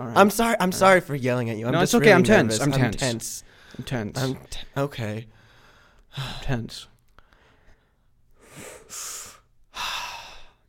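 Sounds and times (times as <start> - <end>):
speech: 0.0 - 5.4, 6.1 - 6.9, 8.6 - 9.2
person breathing heavily: 5.3 - 6.4, 7.2 - 10.6.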